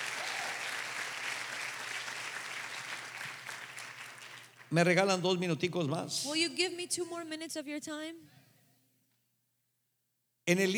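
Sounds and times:
audience applauding: 0.0s - 5.2s
speech: 4.7s - 8.4s, 10.5s - 10.7s.

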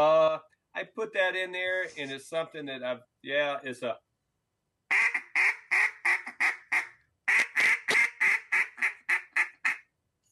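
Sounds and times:
speech: 0.8s - 4.0s
duck call blown in a mallard hen quack cadence: 4.9s - 9.9s.

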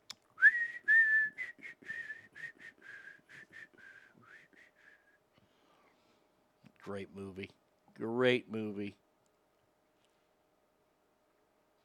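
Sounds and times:
lone whistler whistling a melody from an old movie: 0.4s - 5.1s
speech: 6.9s - 9.0s.

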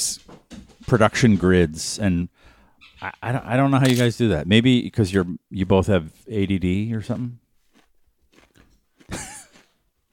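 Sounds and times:
speech: 0.9s - 7.4s
someone chewing kettle chips: 7.7s - 9.8s.

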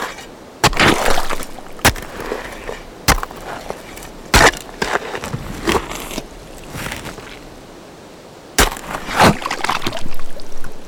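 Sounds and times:
picks striking stone: 0.0s - 7.4s, 8.6s - 9.5s
shovels scraping and crunching loose rock: 0.0s - 7.5s, 8.6s - 10.1s.

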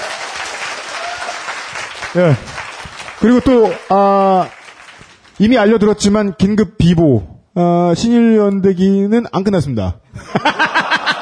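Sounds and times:
applause from a group: 0.0s - 5.4s
speech: 2.1s - 2.6s, 3.2s - 4.6s, 5.4s - 10.7s
laughter: 10.2s - 11.2s.

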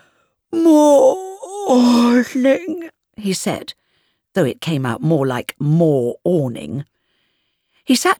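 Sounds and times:
boy yawning into the sleeve of his school jumper: 0.6s - 2.5s
speech: 1.7s - 6.9s, 7.9s - 8.1s.

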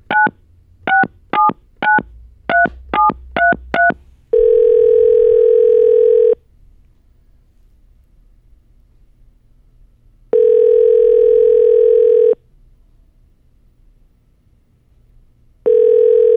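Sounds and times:
ringback tone on the phone line: 2.5s - 6.4s, 10.4s - 12.4s, 15.7s - 16.3s.

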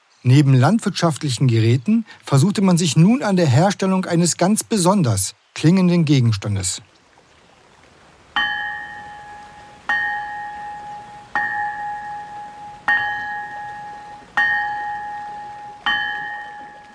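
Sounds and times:
speech: 0.2s - 6.9s
cast iron bell ringing: 8.4s - 16.9s.

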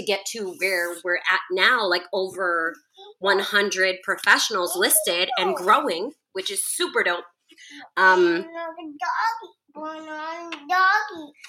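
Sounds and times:
speech: 0.0s - 11.4s
toddler chattering in high-pitched sing-song bursts: 2.8s - 3.4s, 4.4s - 6.0s, 8.0s - 11.4s.

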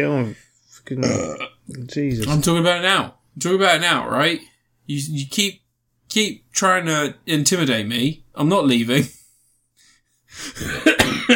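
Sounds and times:
speech: 0.0s - 9.2s, 10.3s - 11.3s
harsh coughs: 10.5s - 11.3s.

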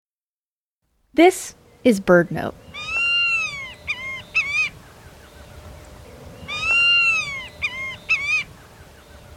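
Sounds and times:
faint steady hum: 1.0s - 9.3s
speech: 1.2s - 2.6s
White-tailed Hawk calling on the Texas coastal plain: 2.4s - 9.3s.

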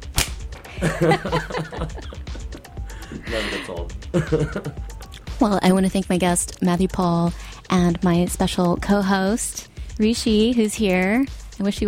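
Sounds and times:
whip crack: 0.0s - 0.6s
people chuckling and laughing: 0.7s - 4.8s
speech: 0.8s - 2.2s, 3.1s - 11.8s.

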